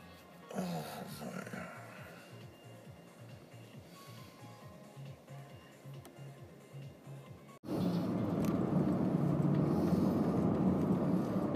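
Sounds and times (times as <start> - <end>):
car driving along a road: 7.6 - 11.5.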